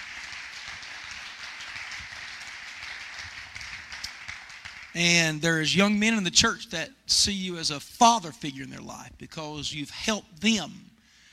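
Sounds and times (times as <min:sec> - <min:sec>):
audience clapping: 0:00.0 - 0:05.4
speech: 0:05.0 - 0:10.9.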